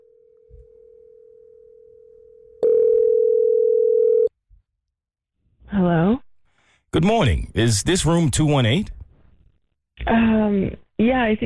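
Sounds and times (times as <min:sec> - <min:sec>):
electronic phone line tone: 0:00.0 - 0:04.3
speech: 0:07.0 - 0:09.0, 0:10.1 - 0:11.4.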